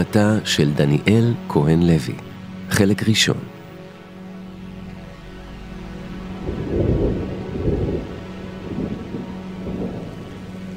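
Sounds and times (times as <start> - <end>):
speech: 0.1 - 3.5
steady rain: 3.5 - 10.7
deep rolling rumbles of thunder: 5.2 - 10.7.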